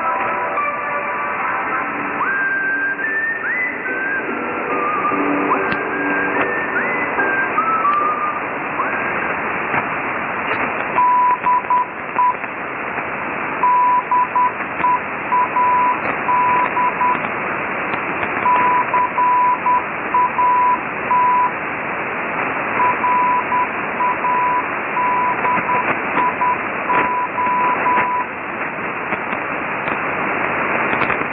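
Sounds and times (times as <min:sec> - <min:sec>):
shortwave radio hiss: 0:00.0 - 0:31.3
Morse code station ID tone beeping dots and dashes: 0:10.9 - 0:12.4, 0:13.6 - 0:17.2, 0:18.4 - 0:21.6, 0:22.8 - 0:28.3.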